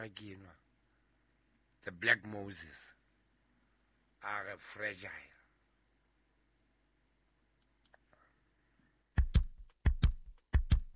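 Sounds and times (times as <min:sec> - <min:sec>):
speech: 0:00.0 - 0:00.6, 0:01.8 - 0:03.0, 0:04.2 - 0:05.3
heartbeat: 0:09.2 - 0:10.9.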